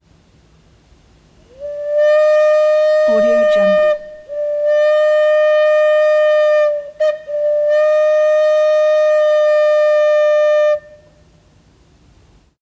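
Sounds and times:
steam train whistle: 1.4 - 11.4.

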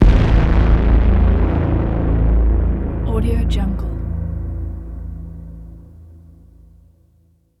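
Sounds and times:
concrete exploding: 0.0 - 2.9
distorted crackle melt: 0.0 - 5.3
braam strike: 0.0 - 6.4.

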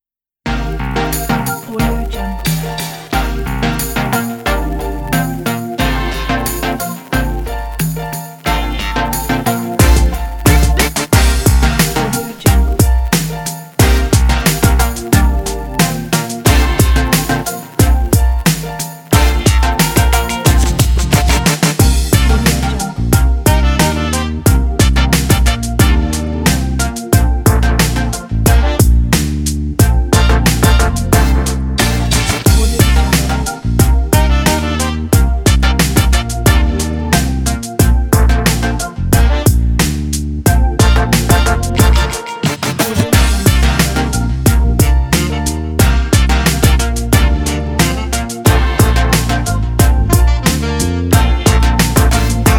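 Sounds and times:
hip hop beat: 0.4 - 52.5.

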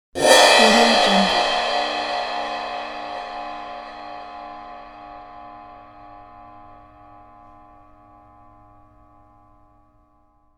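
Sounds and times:
cymbal crash: 0.2 - 7.2.

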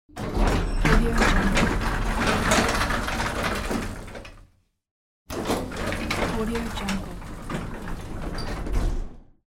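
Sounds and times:
old elevator door opening and closing: 0.1 - 4.4, 5.3 - 9.4.

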